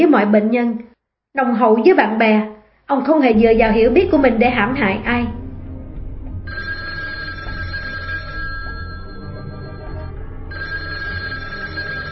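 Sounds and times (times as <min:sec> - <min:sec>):
speech: 0:00.0 - 0:05.3
telephone ringing in electronic bursts: 0:06.5 - 0:12.1.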